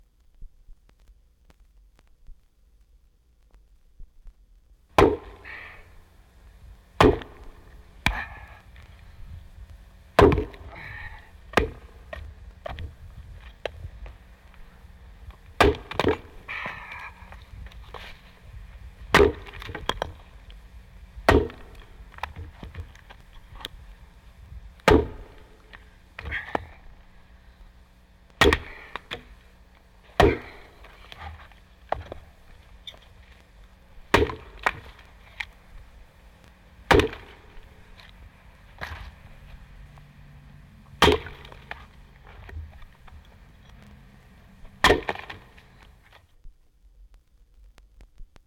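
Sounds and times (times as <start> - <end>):
wood chopping: 4.9 - 5.8, 7.0 - 8.9, 10.1 - 13.0, 15.4 - 18.2, 19.1 - 20.3, 21.2 - 23.7, 24.8 - 26.8, 28.3 - 29.4, 30.1 - 32.2, 34.1 - 35.6, 36.8 - 39.2, 40.9 - 43.0, 44.7 - 45.9.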